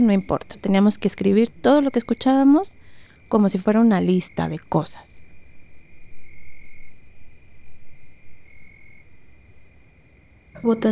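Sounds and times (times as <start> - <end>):
speech: 0.0 - 5.1, 10.6 - 10.9
insects chirping outdoors in a high trill: 0.0 - 10.9.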